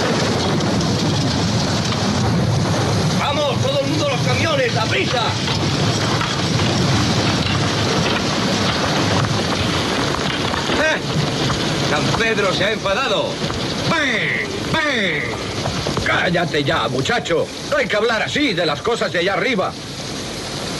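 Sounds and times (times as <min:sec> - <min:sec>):
faint rumbles: 0:00.0 - 0:20.7
steady dense rain pouring down: 0:00.0 - 0:20.7
speech: 0:04.8 - 0:05.8, 0:11.9 - 0:15.4, 0:16.1 - 0:19.9
voices calling out: 0:12.0 - 0:16.8.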